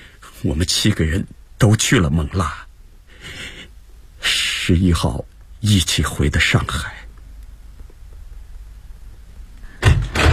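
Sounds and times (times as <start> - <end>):
speech: 0.4 - 2.6, 4.7 - 7.0
door opening with rattling thumps: 9.8 - 10.3.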